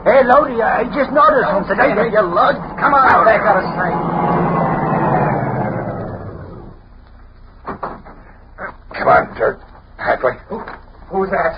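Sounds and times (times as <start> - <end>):
speech: 0.2 - 4.6, 9.1 - 11.5
car engine rumbling: 0.6 - 7.0.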